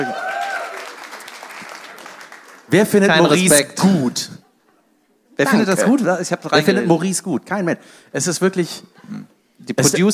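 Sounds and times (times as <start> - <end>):
speech: 0.0 - 0.2, 2.7 - 4.4, 5.4 - 10.1
small audience clapping: 0.0 - 3.2.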